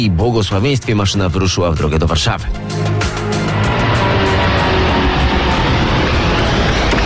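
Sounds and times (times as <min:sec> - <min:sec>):
speech: 0:00.0 - 0:03.0
Boeing 787 Dreamliner jet airliner taking off: 0:02.5 - 0:07.0.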